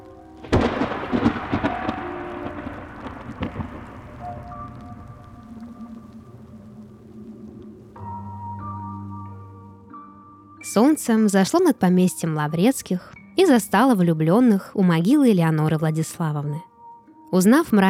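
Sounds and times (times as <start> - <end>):
steady rain hissing: 0.0 - 9.2
thunder crack breaking into rolling rumble: 0.4 - 8.3
speech: 10.8 - 16.7, 17.3 - 17.8.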